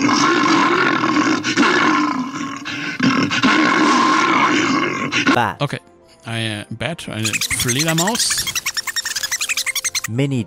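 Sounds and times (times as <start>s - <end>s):
bear roaring: 0.0s - 5.4s
speech: 5.4s - 8.6s, 10.1s - 10.4s.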